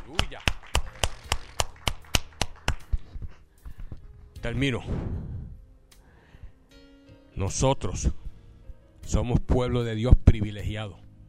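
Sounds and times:
church audience clapping: 0:00.0 - 0:03.2
speech: 0:04.4 - 0:05.3, 0:07.4 - 0:08.2, 0:09.1 - 0:11.0.

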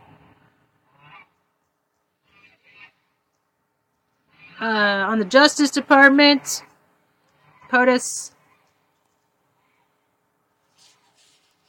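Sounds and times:
faint outdoor noise: 0:00.0 - 0:11.6
Chinese geese honking: 0:00.9 - 0:01.4, 0:02.2 - 0:03.1
speech: 0:04.6 - 0:06.7, 0:07.7 - 0:08.4.

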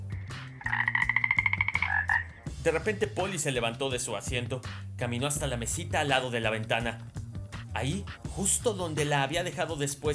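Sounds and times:
large toad calling with a deep croak: 0:00.0 - 0:02.4
speech: 0:02.6 - 0:07.1, 0:07.8 - 0:10.1.

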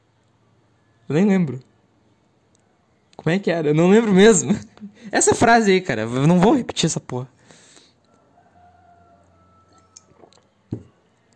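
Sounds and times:
speech: 0:01.1 - 0:01.7, 0:03.2 - 0:07.4
person drinking water in small sips: 0:10.0 - 0:10.5.

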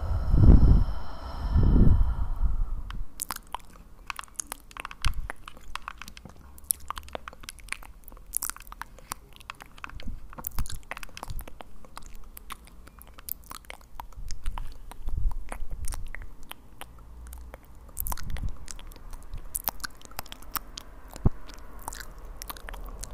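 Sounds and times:
louder low rumble: 0:00.0 - 0:03.4
wet mouth clicks, smacks and crunchy bites: 0:02.9 - 0:23.1.

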